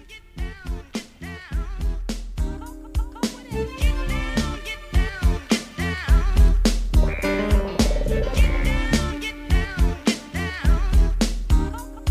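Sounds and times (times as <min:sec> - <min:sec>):
hip-hop instrumental intro with drum beat, deep bass and melodic samples: 0:02.4 - 0:11.9.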